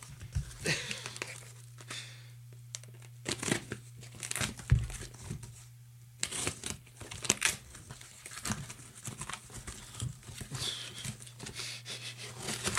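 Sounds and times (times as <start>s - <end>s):
steady low hum: 0.0s - 12.7s
cardboard and tape being cut on a small taped cardboard box: 3.2s - 5.4s, 6.2s - 12.7s.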